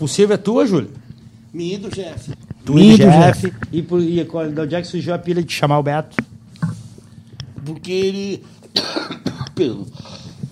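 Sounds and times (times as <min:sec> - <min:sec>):
speech: 0:00.0 - 0:06.3, 0:07.6 - 0:10.2
raspy throat clearing: 0:08.7 - 0:09.6
rough gravelly smoker's cough: 0:08.7 - 0:09.6.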